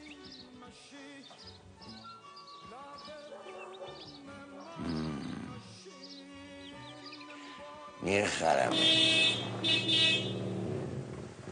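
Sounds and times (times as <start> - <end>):
speech: 8.0 - 10.4
car horn honking: 8.6 - 11.0.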